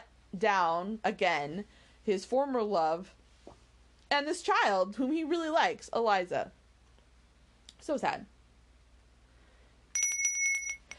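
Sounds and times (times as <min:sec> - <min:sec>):
speech: 0:00.3 - 0:03.2, 0:04.1 - 0:06.6, 0:07.8 - 0:08.3
bell ringing with a rapid bright metallic trill: 0:09.9 - 0:10.9.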